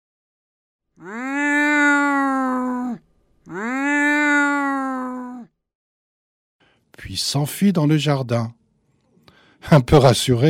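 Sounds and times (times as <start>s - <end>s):
speech: 1.0s - 1.3s, 7.1s - 8.6s, 9.6s - 10.4s
cat meowing: 1.0s - 5.5s.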